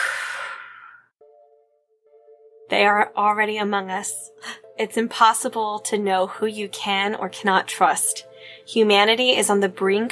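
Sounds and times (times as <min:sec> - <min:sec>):
deep breath exhaled through the mouth: 0:00.0 - 0:01.1
speech: 0:02.7 - 0:10.0.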